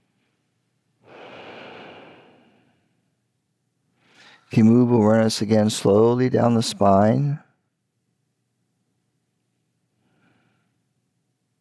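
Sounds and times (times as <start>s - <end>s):
slow deep breath during guided body-awareness relaxation: 0.0s - 3.2s, 3.9s - 4.5s, 9.9s - 10.9s
speech: 4.5s - 7.5s.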